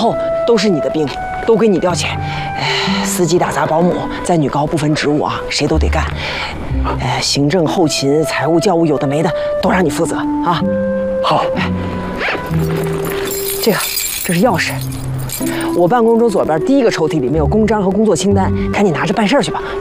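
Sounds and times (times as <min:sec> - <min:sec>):
speech: 0:00.0 - 0:12.8, 0:13.6 - 0:19.7
bunch of keys jingling as they are handed over: 0:12.5 - 0:16.3.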